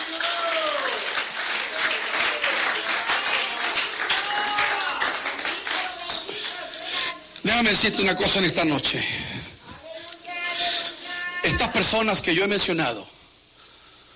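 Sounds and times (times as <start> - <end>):
crowd applauding at an evening religious service: 0.0 - 7.1
voices calling out and cheering: 0.0 - 8.7, 9.6 - 12.2
speech: 7.6 - 9.4, 11.8 - 13.1.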